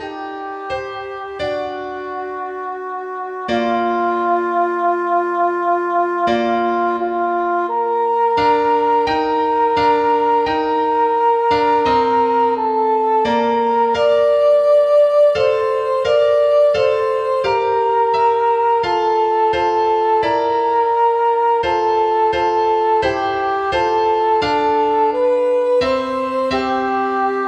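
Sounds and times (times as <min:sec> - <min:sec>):
second soprano singing: 0:00.2 - 0:27.4.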